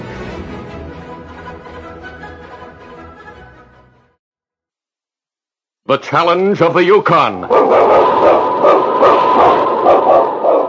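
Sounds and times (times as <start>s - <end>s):
speech: 5.9s - 9.5s
sled dog barking: 7.4s - 10.6s.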